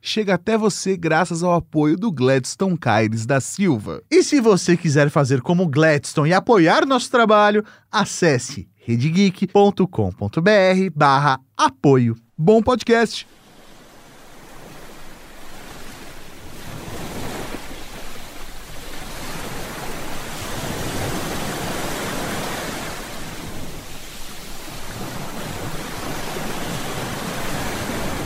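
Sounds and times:
speech: 0.0 - 13.4
ocean waves crashing on shore: 11.9 - 28.2.

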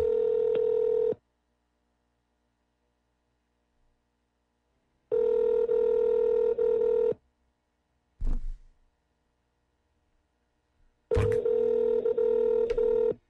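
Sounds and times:
telephone line electronic ring tone after an answering machine message: 0.0 - 1.2, 5.1 - 7.2, 11.1 - 13.2.

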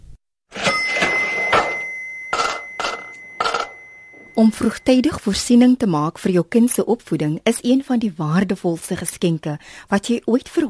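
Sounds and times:
bright metallic cash register bell ringing: 0.5 - 5.2
speech: 4.4 - 10.6.

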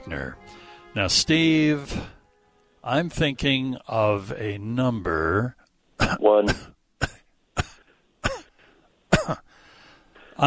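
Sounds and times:
speech: 0.1 - 2.1, 2.8 - 6.7
person coughing: 6.0 - 9.5.

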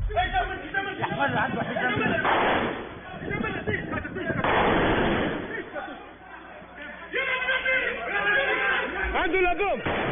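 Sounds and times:
people shouting and crying out in agitated voices: 0.1 - 10.1
laughter: 0.7 - 2.3
speech: 1.2 - 2.0
gunfire bursts during a shooting attack on tourists at a hotel: 2.2 - 3.0, 4.4 - 5.6.

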